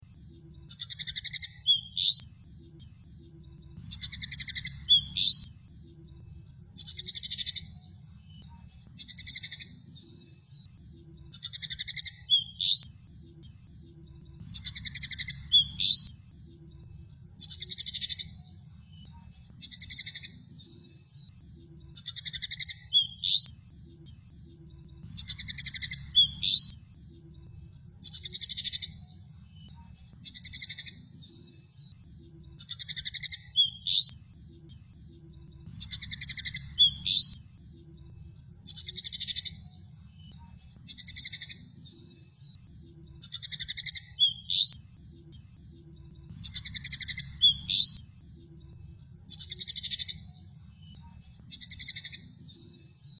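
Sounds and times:
female pied fantail calling: 0.0 - 20.9, 21.5 - 31.6, 32.2 - 52.7.

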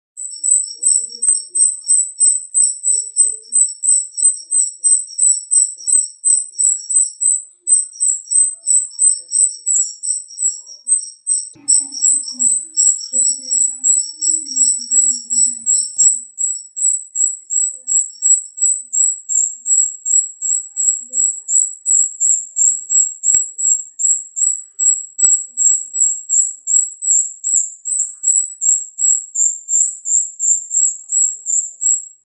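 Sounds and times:
jalak rio starling singing: 0.2 - 32.2.

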